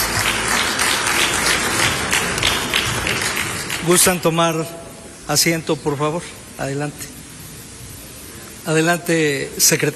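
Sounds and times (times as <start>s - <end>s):
audience applauding after guests pose for official photo: 0.0s - 4.3s
speech: 3.9s - 7.2s, 8.7s - 9.9s.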